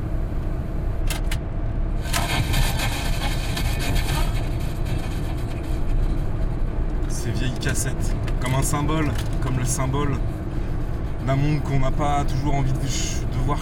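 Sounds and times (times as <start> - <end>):
car engine rumble from inside a moving vehicle: 0.0 - 13.6
road noise from inside a moving vehicle: 0.0 - 13.6
speech: 7.8 - 10.4, 11.3 - 13.6.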